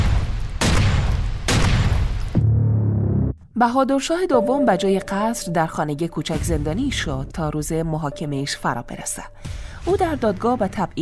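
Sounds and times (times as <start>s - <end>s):
pistol shots fired by an English officer: 0.0s - 2.3s
speech: 3.6s - 10.9s.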